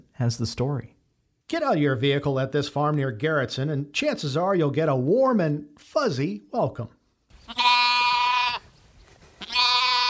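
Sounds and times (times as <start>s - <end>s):
speech: 0.2s - 7.7s
orphan lambs bleating on a farm: 7.3s - 8.7s, 9.4s - 10.0s.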